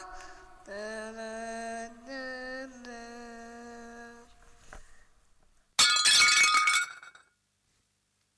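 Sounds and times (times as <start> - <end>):
plate dropped and shattering: 5.8 - 7.3.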